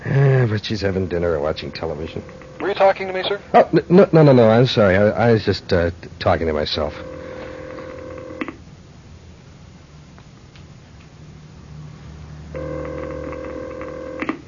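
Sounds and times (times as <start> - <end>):
speech: 0.4 - 7.1
faint low hum: 0.9 - 14.2
telephone ringback tone of an unanswered call placed through an operator: 1.8 - 3.4, 6.9 - 8.4, 12.6 - 14.3.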